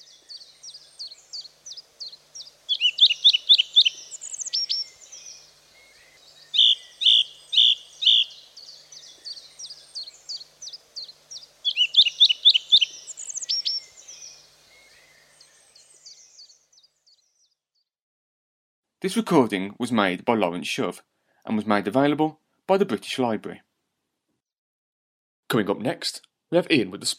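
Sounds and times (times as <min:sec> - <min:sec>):
song thrush singing: 0:00.0 - 0:17.9
speech: 0:19.1 - 0:23.6, 0:25.5 - 0:27.1.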